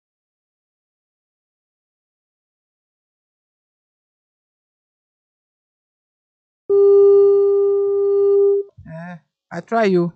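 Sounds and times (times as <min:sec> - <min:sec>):
phone ringback tone for an unanswered call: 0:06.7 - 0:08.7
speech: 0:09.5 - 0:10.1.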